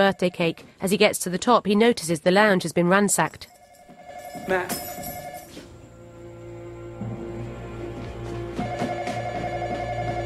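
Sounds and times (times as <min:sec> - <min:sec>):
speech: 0:00.0 - 0:03.6, 0:04.4 - 0:05.1
telephone ringing with a warbling electronic tone in a house lounge: 0:03.5 - 0:05.6, 0:08.6 - 0:10.2.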